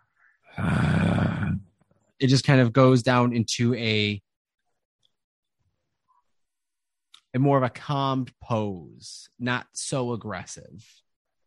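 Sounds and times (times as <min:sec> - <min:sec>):
person voicing a creature's heavy chest breathing: 0:00.5 - 0:01.6
speech: 0:02.2 - 0:04.3, 0:07.4 - 0:11.0.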